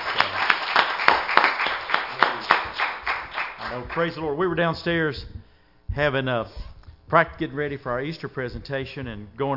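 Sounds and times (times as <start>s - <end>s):
audience clapping hands in praise: 0.0s - 4.3s
speech: 3.8s - 5.4s, 6.0s - 9.5s.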